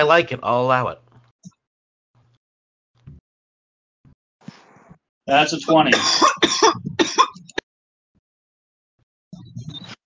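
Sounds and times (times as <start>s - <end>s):
speech: 0.0s - 1.0s, 5.3s - 7.3s
person coughing: 5.9s - 7.5s.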